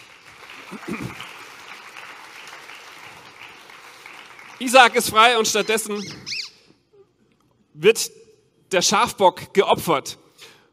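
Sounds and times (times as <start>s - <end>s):
small group applauding: 0.0s - 5.7s
speech: 4.6s - 6.4s, 7.8s - 10.2s.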